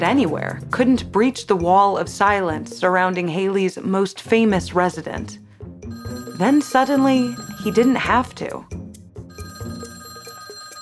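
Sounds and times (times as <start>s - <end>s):
speech: 0.0s - 5.4s, 6.0s - 8.8s
telephone bell ringing: 5.9s - 8.4s, 9.3s - 10.7s.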